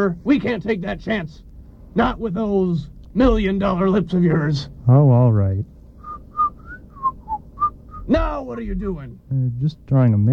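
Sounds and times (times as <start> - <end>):
speech: 0.0 - 5.7, 8.1 - 10.3
person whistling a short melodic phrase: 6.0 - 8.1.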